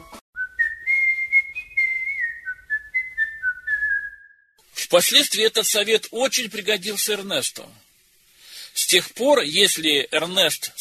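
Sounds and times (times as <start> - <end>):
person whistling a wandering melody: 0.0 - 4.4
speech: 4.9 - 7.8, 8.9 - 10.7.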